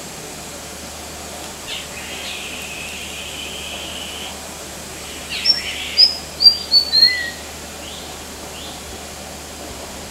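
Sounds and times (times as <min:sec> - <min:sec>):
quiet background hiss: 0:00.0 - 0:10.1
white-throated fantail singing at Kinabalu Park in Borneo: 0:01.8 - 0:07.8.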